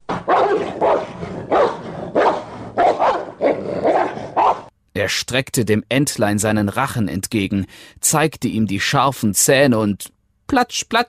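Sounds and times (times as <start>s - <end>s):
large dog barking deeply: 0.1s - 4.7s
speech: 5.1s - 11.0s.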